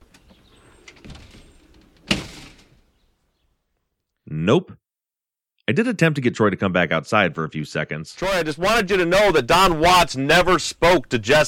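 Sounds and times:
door scraping: 0.0 - 3.0
speech: 4.5 - 4.8, 5.7 - 11.4.

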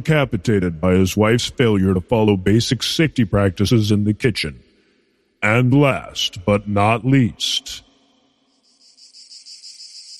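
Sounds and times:
speech: 0.0 - 4.6, 5.4 - 7.9
cricket chirping: 5.8 - 10.1.

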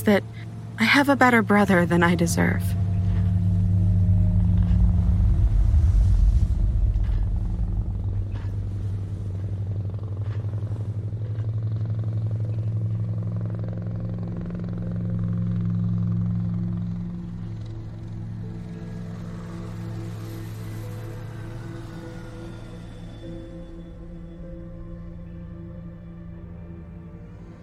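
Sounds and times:
speech: 0.0 - 2.8
distant helicopter droning: 0.0 - 27.6.

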